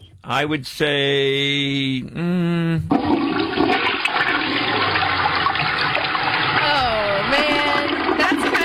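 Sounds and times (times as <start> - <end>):
speech: 0.3 - 3.8
toilet flushing loudly: 2.9 - 8.6.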